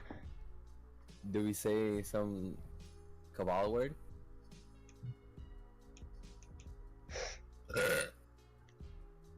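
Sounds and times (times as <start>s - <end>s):
speech: 1.2s - 2.7s, 3.4s - 4.0s
loud burp: 7.7s - 8.2s.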